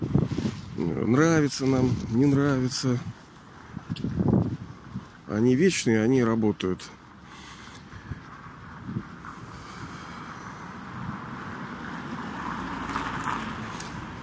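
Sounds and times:
outdoor wind rushing against the microphone: 0.0s - 5.6s, 7.4s - 14.2s
speech: 0.8s - 3.2s, 5.3s - 7.0s.

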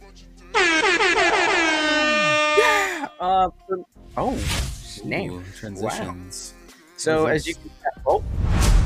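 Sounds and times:
air horn sound effect blaring: 0.5s - 3.0s
speech: 3.4s - 8.4s.

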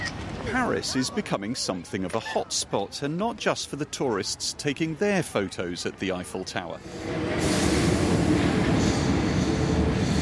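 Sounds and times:
speech: 0.5s - 7.6s
metro train wheels on track: 6.6s - 10.2s
metro train rumbling at an underground station in Paris: 6.7s - 10.2s.

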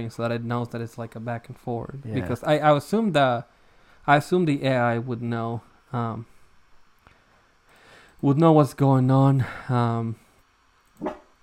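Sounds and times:
speech: 0.0s - 6.3s, 8.2s - 10.2s, 11.0s - 11.2s
dog barking: 11.0s - 11.3s.

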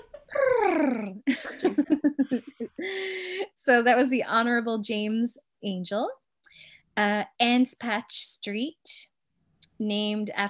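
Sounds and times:
human voice imitating a cat purr: 0.3s - 1.2s
laughter: 1.3s - 3.4s
speech: 3.7s - 6.2s, 7.0s - 9.1s, 9.8s - 10.4s.

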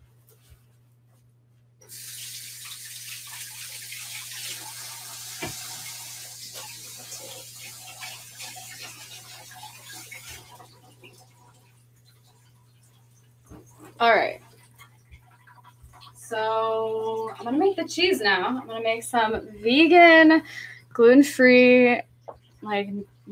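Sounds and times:
tap water running while hands are washed: 1.8s - 22.8s
low constant hum: 6.9s - 23.3s
speech: 17.4s - 23.3s.

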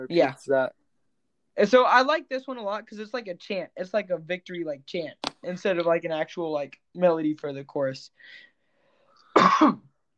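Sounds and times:
speech: 0.0s - 0.8s, 1.6s - 8.5s, 9.4s - 9.9s
harsh raspy cough: 9.3s - 9.9s.

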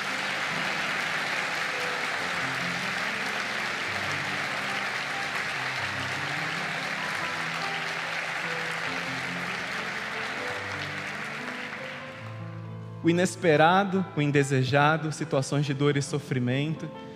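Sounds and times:
large crowd applauding: 0.0s - 12.6s
soft music: 0.0s - 17.1s
speech: 13.0s - 17.1s.

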